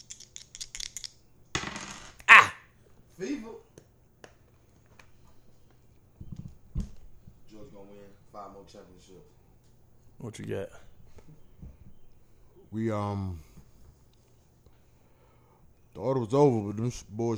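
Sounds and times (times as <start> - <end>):
dice rolled clattering onto a hard surface: 0.0 - 2.2
speech: 3.2 - 3.7, 7.8 - 9.4, 10.2 - 11.4, 12.7 - 13.5, 16.0 - 17.3.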